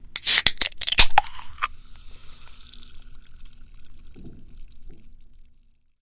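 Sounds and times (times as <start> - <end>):
jar opening: 0.2 - 2.7
bubbles: 1.9 - 6.0.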